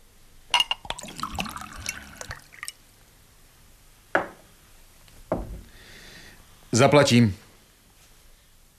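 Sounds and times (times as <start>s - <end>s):
drink pouring into a small glass in a tavern: 0.6s - 2.8s
glass or bottle knocking on a table: 4.2s - 4.4s, 5.3s - 5.6s
speech: 6.7s - 7.4s.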